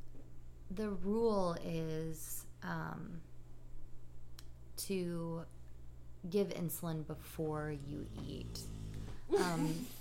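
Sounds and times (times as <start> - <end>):
speech: 0.7 - 3.3, 4.8 - 5.6, 6.2 - 10.0
sleeping dog snoring: 7.8 - 10.0.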